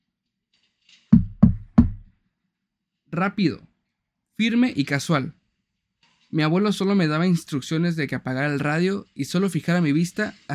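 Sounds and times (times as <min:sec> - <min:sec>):
knocking on a car's side window: 0:01.1 - 0:02.1
speech: 0:03.2 - 0:03.7, 0:04.4 - 0:05.4, 0:06.3 - 0:10.5.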